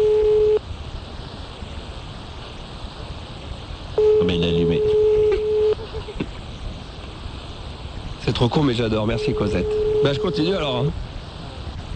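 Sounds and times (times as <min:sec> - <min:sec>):
electronic telephone tone of a call to a landline: 0:00.0 - 0:00.6, 0:04.0 - 0:05.8, 0:09.1 - 0:10.8
faint telephone line hiss: 0:00.0 - 0:11.9
speech: 0:08.4 - 0:11.1.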